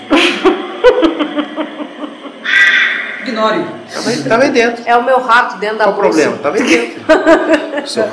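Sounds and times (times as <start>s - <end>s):
laughter: 0.0s - 2.4s, 6.6s - 8.1s
person imitating crow cawing: 2.4s - 3.1s
speech: 3.4s - 8.1s.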